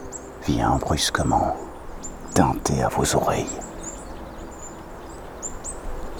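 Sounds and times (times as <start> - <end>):
birds chirping in fir forests on the way to Lac de la Pradeille: 0.0 - 4.4
speech: 0.5 - 1.7, 2.4 - 3.7.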